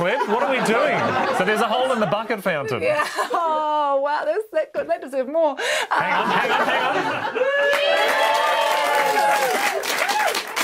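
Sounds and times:
laughter: 0.0s - 3.7s, 5.8s - 7.9s
speech: 0.0s - 8.4s
crowd applause: 6.4s - 10.6s.

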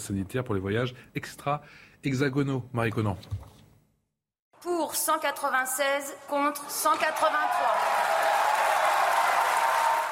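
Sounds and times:
speech: 0.0s - 3.5s, 4.7s - 8.1s
opposition deputies applauding in the National Assembly hemicycle: 6.6s - 10.1s.

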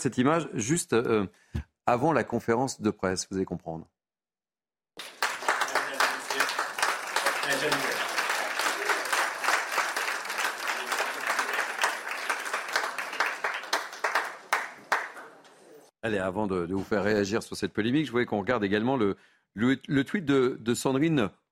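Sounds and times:
speech: 0.0s - 4.0s, 7.5s - 8.0s, 16.0s - 21.4s
large audience applause giving an actor a long ovation at the Cannes Film Festival: 5.0s - 15.5s.

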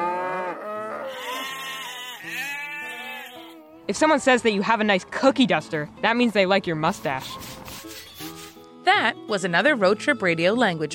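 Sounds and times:
herd of cattle mooing loudly: 0.0s - 3.5s
speech: 3.9s - 7.6s, 8.9s - 10.9s.

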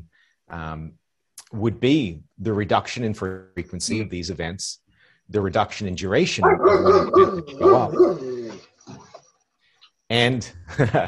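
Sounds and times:
speech: 0.5s - 9.1s, 10.1s - 11.0s
puppy barking and yelping: 6.4s - 8.6s
puppy growling: 6.4s - 9.1s
laughter: 10.7s - 11.0s.

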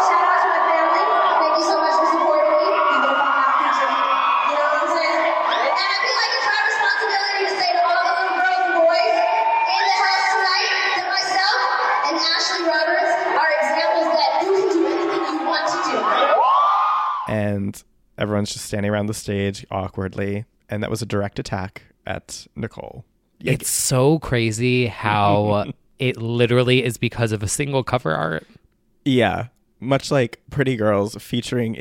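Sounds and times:
overlapping shouts and whoops: 0.0s - 17.3s
large crowd roaring and cheering at concert: 0.0s - 17.4s
speech: 17.7s - 31.7s.

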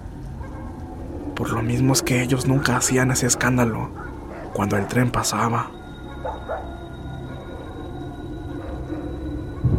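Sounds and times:
steady low rumbling background: 0.0s - 9.7s
female dog barking at night: 0.4s - 0.8s, 3.3s - 5.0s, 6.1s - 7.8s
speech: 1.4s - 5.8s.

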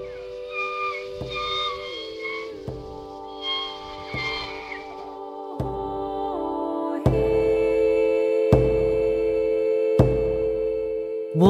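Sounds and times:
hunting killer whale whistles in the Burrard Inlet: 0.0s - 5.6s
droning killer whale tones: 0.0s - 11.0s.

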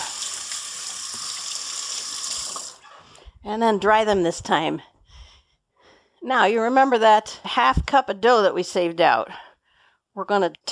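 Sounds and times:
running tap water rinsing sticky dough off hands: 0.0s - 2.8s
speech: 3.4s - 4.9s, 6.2s - 9.4s, 10.2s - 10.7s.

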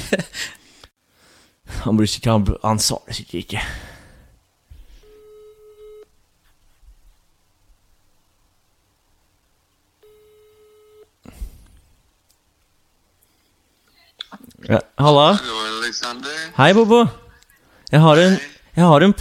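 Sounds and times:
soft hiss: 0.0s - 19.1s
speech: 0.1s - 0.6s, 1.8s - 3.9s, 14.7s - 17.2s, 17.9s - 19.1s
long ringback tones from a telephone line: 5.0s - 6.0s, 10.0s - 11.1s.

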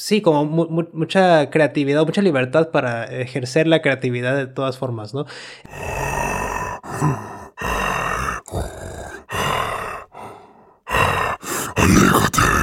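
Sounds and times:
speech: 0.0s - 6.4s, 7.0s - 7.9s
guttural creature growls voice performance: 5.7s - 12.6s
rasping grunts: 5.7s - 12.6s.

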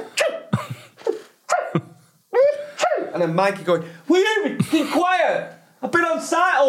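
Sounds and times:
voice imitating sneezes: 0.0s - 3.2s
speech: 1.7s - 1.9s, 3.1s - 6.6s.

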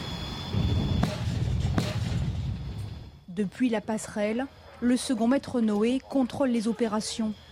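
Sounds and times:
low rumble of wind at sea: 0.0s - 4.0s
naval gun firing aboard a frigate during crew firing training at sea: 1.0s - 2.4s
speech: 3.4s - 7.4s.

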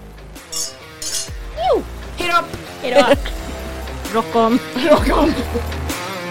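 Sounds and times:
glasses clinking together in a toast: 0.5s - 1.6s
speech: 1.7s - 3.4s, 4.1s - 5.8s
laughter: 2.7s - 5.9s.

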